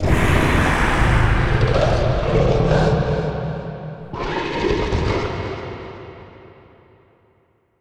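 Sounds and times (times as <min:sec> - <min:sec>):
distant short abstract scream: 0:00.0 - 0:05.3.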